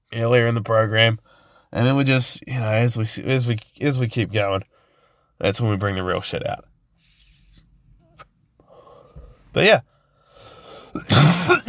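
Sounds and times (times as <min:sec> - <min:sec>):
speech: 0:00.2 - 0:04.7, 0:05.4 - 0:06.7, 0:09.5 - 0:09.9, 0:11.0 - 0:11.3
harsh throaty rasping cough: 0:10.9 - 0:11.6
throat clearing: 0:11.0 - 0:11.6.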